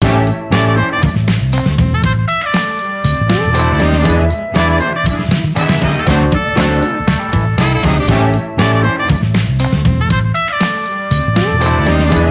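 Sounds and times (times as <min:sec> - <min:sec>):
music: 0:00.0 - 0:12.2.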